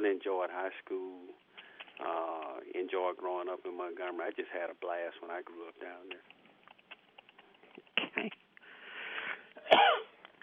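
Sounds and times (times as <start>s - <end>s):
speech: 0.2s - 1.4s, 2.0s - 6.4s
wheezy breathing: 8.6s - 9.6s
person coughing: 9.6s - 10.1s.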